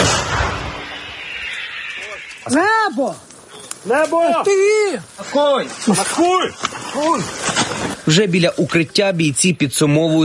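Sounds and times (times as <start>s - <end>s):
artillery gun firing at a target: 0.0s - 0.9s
speech: 2.4s - 10.2s.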